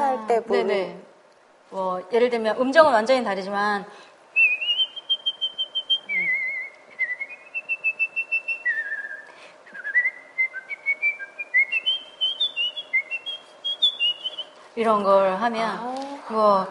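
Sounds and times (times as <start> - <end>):
speech: 0.4 - 1.1, 1.7 - 4.1, 14.8 - 16.6
person whistling a lively melody: 4.4 - 14.4.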